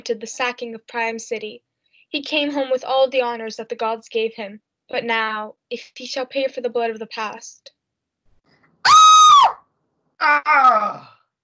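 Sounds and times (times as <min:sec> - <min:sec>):
speech: 0:00.0 - 0:07.8, 0:10.2 - 0:11.2
woman's loud high-pitched scream: 0:08.8 - 0:09.6.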